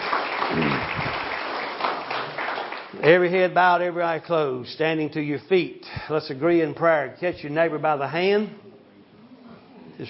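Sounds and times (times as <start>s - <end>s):
church congregation clapping in praise: 0.0s - 3.3s
speech: 3.0s - 8.6s.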